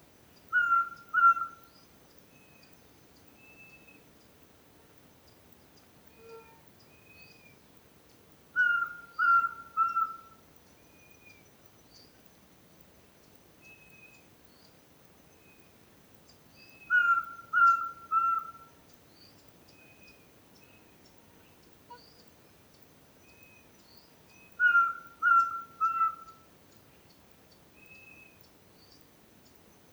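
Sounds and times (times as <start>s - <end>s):
Glaucidium minutissimum pygmy owl: 0.5s - 1.7s, 8.6s - 10.4s, 16.8s - 18.8s, 24.4s - 26.5s.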